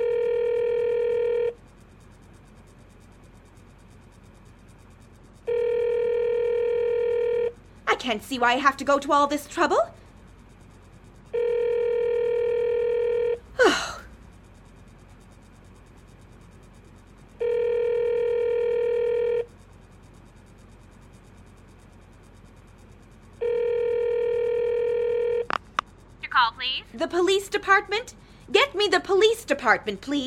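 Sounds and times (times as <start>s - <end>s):
telephone call buzzing tones: 0.0s - 1.6s, 5.5s - 7.6s, 11.4s - 13.4s, 17.4s - 19.5s, 23.4s - 25.6s
speech: 8.0s - 10.0s, 27.0s - 30.2s
sharp click: 25.5s - 25.9s.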